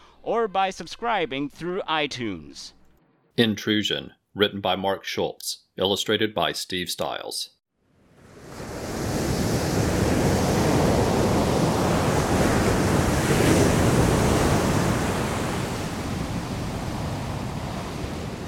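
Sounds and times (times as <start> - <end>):
speech: 0.2 - 2.8, 3.4 - 7.6
gusty wind-like hiss: 8.1 - 18.4
ocean surf rolling in below steep cliffs: 8.1 - 18.4.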